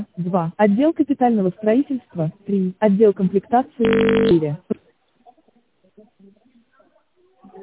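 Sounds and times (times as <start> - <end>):
speech: 0.2 - 4.8
telephone keypad DTMF tone dialing an extension on an office phone line: 3.8 - 4.4.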